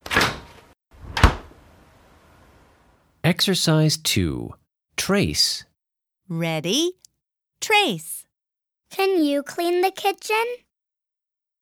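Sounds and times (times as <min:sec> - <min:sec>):
fridge door swinging shut and sealing: 0:00.0 - 0:01.7
speech: 0:03.3 - 0:05.7, 0:06.3 - 0:07.0, 0:07.6 - 0:08.2, 0:08.9 - 0:10.6.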